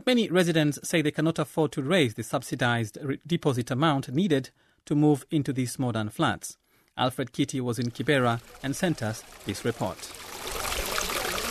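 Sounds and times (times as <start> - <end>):
speech: 0.0 - 10.6
sewage water gushing through an open trench between blocks of flats: 7.8 - 11.4.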